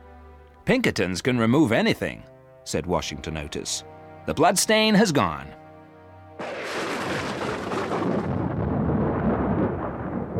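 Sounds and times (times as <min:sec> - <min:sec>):
speech: 0:00.7 - 0:05.6
thunder crashing over a house during lightning: 0:06.4 - 0:10.3.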